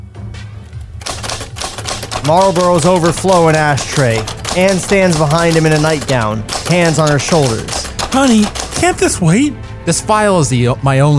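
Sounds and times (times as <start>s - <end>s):
old manual typewriter clacking at a kitchen table: 1.0s - 9.2s
speech: 2.2s - 11.1s.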